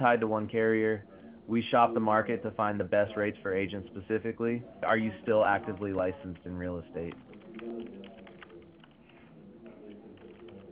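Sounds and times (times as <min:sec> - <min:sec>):
speech: 0:00.0 - 0:07.3
typing on a computer keyboard heard over a phone line: 0:05.7 - 0:10.7.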